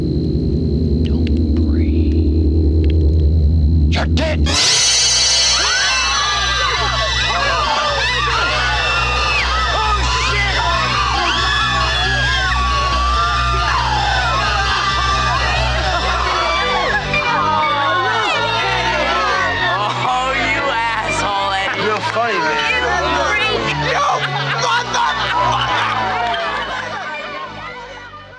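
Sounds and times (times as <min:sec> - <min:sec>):
low steady hum: 0:00.0 - 0:07.7
large group of campers screaming in fright: 0:04.5 - 0:28.0
laughter: 0:05.2 - 0:28.3.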